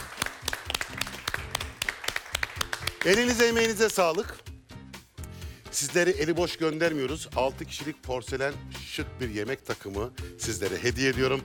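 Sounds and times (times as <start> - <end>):
applause for the winner of a weekly competition final: 0.0 - 4.4
speech: 3.0 - 4.4, 5.8 - 11.4.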